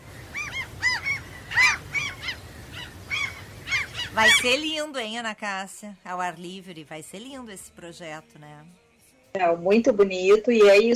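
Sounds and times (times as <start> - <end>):
seagulls calling: 0.0 - 4.9
speech: 4.2 - 10.9.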